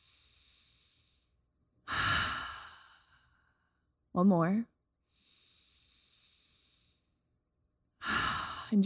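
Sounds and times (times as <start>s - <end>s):
slow deep breath in and out: 0.0s - 3.9s, 5.0s - 7.3s, 8.0s - 8.8s
speech: 4.2s - 4.7s.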